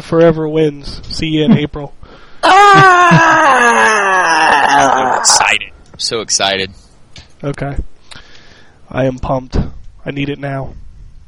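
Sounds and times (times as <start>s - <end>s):
speech: 0.1s - 6.8s, 7.4s - 7.9s, 8.9s - 10.8s
people screaming and groaning in mock death: 2.4s - 5.7s.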